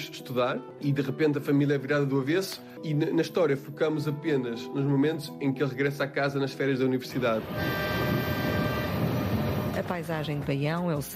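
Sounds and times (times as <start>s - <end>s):
speech: 0.0s - 8.0s, 9.9s - 11.1s
train rolling past at a railway station: 7.2s - 10.6s.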